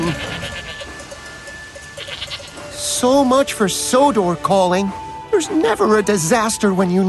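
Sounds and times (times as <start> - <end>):
small herd of goats bleating at a level crossing: 0.0 - 1.0, 2.0 - 2.7
speech: 3.0 - 7.0.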